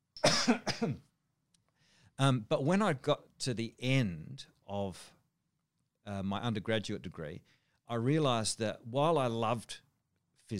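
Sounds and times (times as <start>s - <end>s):
quick dry coughs: 0.2s - 1.1s
speech: 0.2s - 1.1s, 2.2s - 5.2s, 6.0s - 9.8s.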